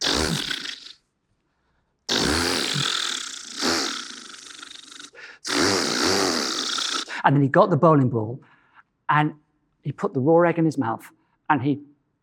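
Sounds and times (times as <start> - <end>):
voice imitating a chainsaw being started and running: 0.0 - 1.0, 2.1 - 7.2
speech: 7.2 - 8.5, 9.1 - 11.9.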